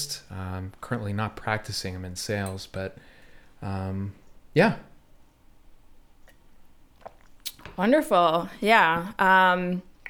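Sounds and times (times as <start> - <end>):
speech: 0.0 - 4.9, 7.8 - 9.9
quiet room hiss: 0.0 - 6.9
person sipping and swallowing wine: 6.2 - 7.8.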